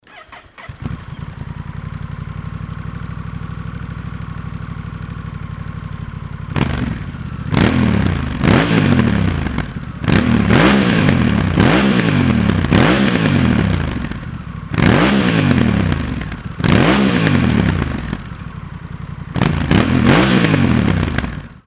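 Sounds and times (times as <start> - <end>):
Honda Rebel 1100 motorcycle engine with Moriwaki exhaust: 0.0 - 21.6.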